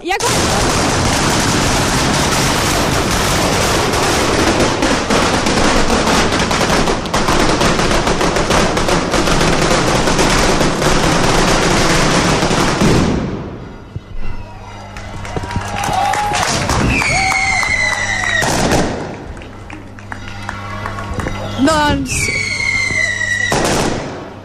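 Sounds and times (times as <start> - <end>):
speech: 0.0 - 0.8
long string of firecrackers bursting: 0.0 - 14.3, 14.9 - 24.4
crowd noise: 0.0 - 24.4
whistles: 16.8 - 18.5, 22.1 - 23.6.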